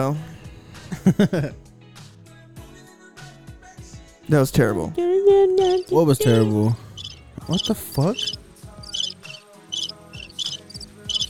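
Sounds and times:
speech: 0:00.0 - 0:00.3, 0:01.0 - 0:01.6, 0:04.3 - 0:06.8, 0:07.5 - 0:08.4
crickets chirping in short high trilling bursts: 0:05.6 - 0:11.2.

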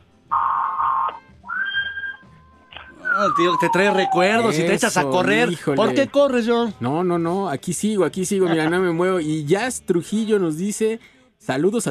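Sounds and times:
siren wailing: 0:00.3 - 0:04.8
speech: 0:03.2 - 0:11.8.

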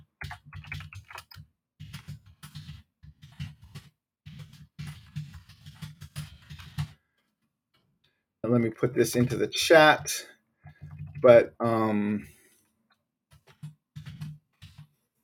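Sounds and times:
computer keyboard typing: 0:00.0 - 0:07.0, 0:10.6 - 0:11.4, 0:13.3 - 0:15.2
speech: 0:08.5 - 0:10.3, 0:11.2 - 0:12.4.

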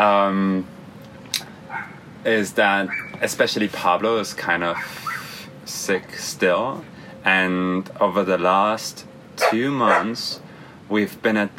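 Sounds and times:
speech: 0:00.0 - 0:00.8, 0:02.2 - 0:05.1, 0:05.7 - 0:11.5
dog barking outside: 0:01.7 - 0:02.1, 0:02.8 - 0:03.2, 0:04.7 - 0:05.4, 0:09.4 - 0:10.2.

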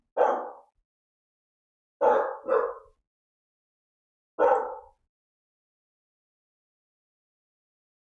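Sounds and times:
dogs barking: 0:00.2 - 0:00.7, 0:02.0 - 0:03.0, 0:04.4 - 0:05.0.

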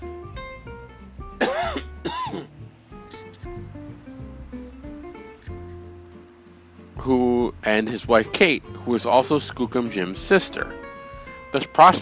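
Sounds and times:
soft steady music: 0:00.0 - 0:11.9
rough coughs: 0:01.4 - 0:02.5
speech: 0:07.0 - 0:10.8, 0:11.5 - 0:11.9.

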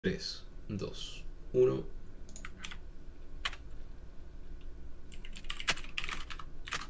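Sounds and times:
speech: 0:00.0 - 0:02.0
steady low hum: 0:00.0 - 0:06.8
rapid irregular typing on a computer keyboard: 0:02.3 - 0:02.8, 0:05.1 - 0:06.8.

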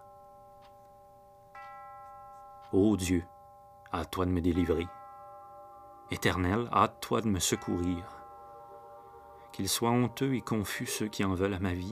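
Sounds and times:
kitchen clock chiming: 0:00.0 - 0:11.9
speech: 0:02.7 - 0:05.0, 0:06.1 - 0:08.2, 0:09.6 - 0:11.9.

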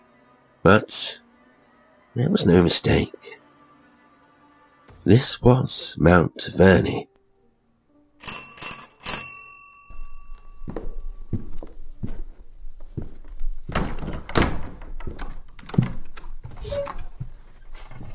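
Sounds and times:
speech: 0:00.6 - 0:01.2, 0:02.2 - 0:03.4, 0:05.0 - 0:07.1
doorbell ringing with a lingering metallic tone: 0:08.2 - 0:11.4
soft shuffling movement: 0:09.9 - 0:13.7, 0:16.4 - 0:18.1
door being opened by an elderly manservant: 0:13.2 - 0:18.1.

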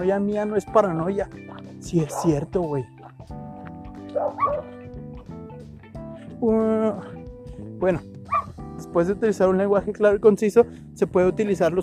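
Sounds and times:
speech: 0:00.0 - 0:03.4, 0:04.1 - 0:04.8, 0:06.4 - 0:07.2, 0:07.8 - 0:11.8
dog barking in quick yelping bursts: 0:02.0 - 0:02.4, 0:04.1 - 0:04.8, 0:08.3 - 0:08.6.

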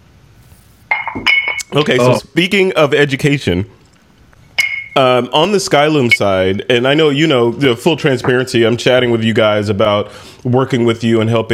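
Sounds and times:
faint low room hum: 0:00.0 - 0:11.5
glasses clinking in a toast: 0:00.9 - 0:02.2, 0:04.5 - 0:05.1, 0:06.0 - 0:06.4
speech: 0:01.2 - 0:03.8, 0:05.0 - 0:11.5.

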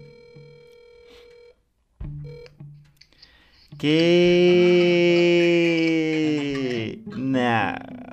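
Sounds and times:
video call electronic ringing tone: 0:00.0 - 0:01.6, 0:02.2 - 0:02.6
speech: 0:03.8 - 0:05.1
laughter: 0:03.8 - 0:07.5.

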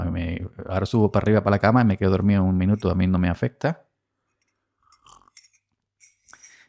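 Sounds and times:
speech: 0:00.6 - 0:03.8
faint clink of glass: 0:04.4 - 0:06.6
soft slurping of coffee from a glass: 0:04.8 - 0:05.5.

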